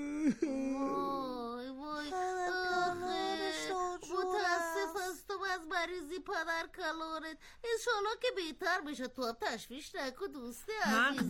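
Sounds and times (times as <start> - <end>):
speech: 0.0 - 0.6, 5.6 - 11.2
person crying and sobbing in wavering wails: 0.0 - 5.2.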